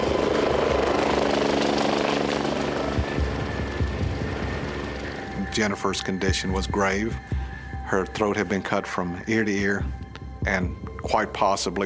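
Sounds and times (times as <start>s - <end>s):
medical helicopter rotor and engine thumping: 0.0s - 7.4s
speech: 5.6s - 11.8s.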